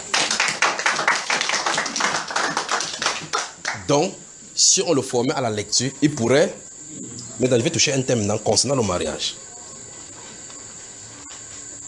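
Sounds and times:
audience applause during a teaching session: 0:00.0 - 0:03.9
speech: 0:03.9 - 0:06.6, 0:07.4 - 0:09.5.

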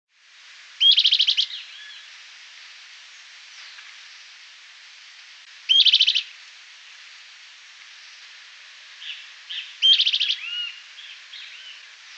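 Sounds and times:
Bran-colored flycatcher Myiophobus fasciatus rattling calls: 0:00.8 - 0:02.1, 0:05.7 - 0:06.3, 0:09.0 - 0:12.1.

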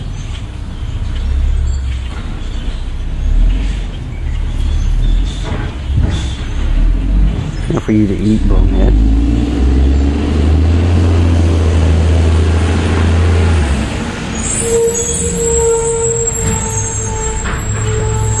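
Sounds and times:
garbage truck engine rumble: 0:00.0 - 0:18.3
speech: 0:07.9 - 0:09.3
garbage truck air brakes hissing and squealing: 0:14.2 - 0:18.3.

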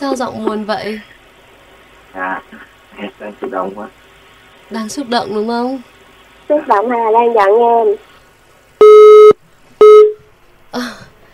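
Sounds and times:
speech: 0:00.0 - 0:01.1, 0:02.1 - 0:04.0, 0:04.7 - 0:08.1, 0:10.7 - 0:11.1
telephone busy tone after a dropped call: 0:08.8 - 0:10.2.

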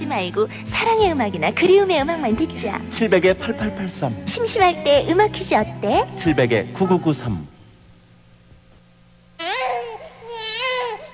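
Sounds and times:
speech: 0:00.0 - 0:07.5
newborn baby crying: 0:09.4 - 0:11.1.

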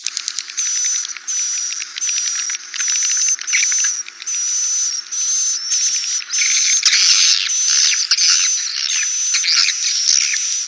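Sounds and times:
swiftlet calls used for swiftlet farming: 0:00.4 - 0:10.6
thin constant whistle: 0:00.6 - 0:10.6.

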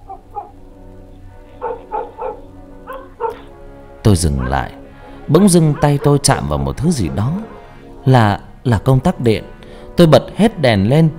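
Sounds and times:
dog barking faintly in the distance from the top of a staircase: 0:00.0 - 0:00.6, 0:01.5 - 0:03.6, 0:04.2 - 0:06.5
speech: 0:04.1 - 0:11.1.

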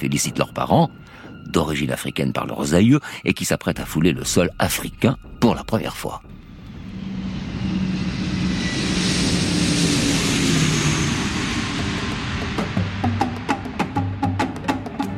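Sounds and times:
speech: 0:00.0 - 0:06.4
DC-8 jet airliner landing at the airport in Algiers: 0:06.2 - 0:15.1.

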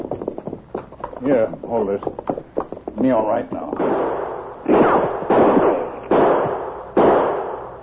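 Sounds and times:
speech: 0:01.2 - 0:02.3, 0:03.0 - 0:04.1
gunshots fired from behind a big cottonwood tree in a radio drama: 0:03.8 - 0:07.8.

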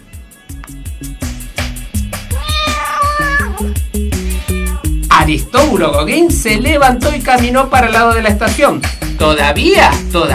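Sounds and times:
big cat meowing and wailing: 0:02.3 - 0:05.0
speech: 0:05.3 - 0:10.3.

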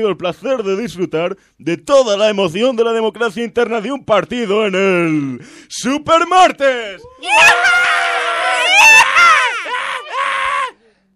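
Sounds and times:
speech: 0:00.0 - 0:08.0
man screaming at a political rally: 0:07.2 - 0:10.8.

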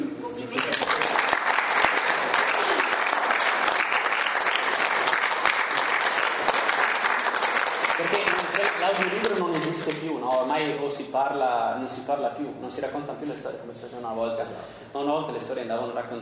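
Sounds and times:
crowd applauding: 0:00.5 - 0:10.0
speech: 0:08.9 - 0:16.2.

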